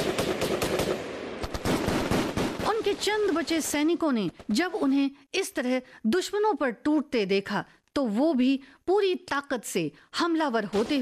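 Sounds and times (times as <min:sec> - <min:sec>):
light machine gun firing bursts: 0:00.0 - 0:03.1
speech: 0:03.0 - 0:11.0.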